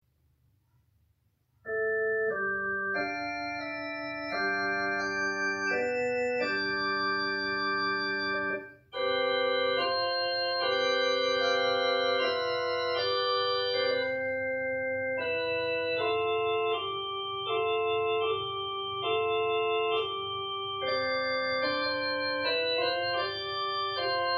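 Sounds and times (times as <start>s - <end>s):
organ improvisation: 1.7s - 24.3s.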